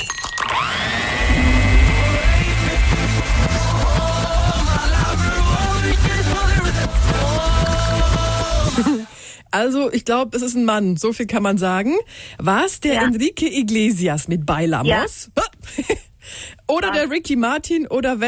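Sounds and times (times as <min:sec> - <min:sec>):
kitchen blender starting up and running: 0:00.4 - 0:09.0
speech: 0:09.6 - 0:18.2.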